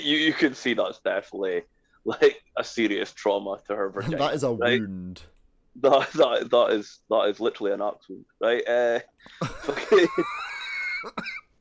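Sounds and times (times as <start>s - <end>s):
speech: 0.0s - 10.4s, 11.0s - 11.4s
laughter: 9.3s - 11.1s
person coughing: 11.0s - 11.5s.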